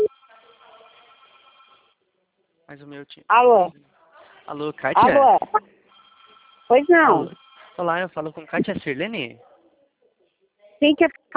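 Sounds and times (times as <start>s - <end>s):
telephone ringing with electronic ringtone: 0.0s - 1.9s, 5.9s - 7.8s
speech: 2.7s - 5.7s, 6.7s - 9.5s, 10.8s - 11.3s.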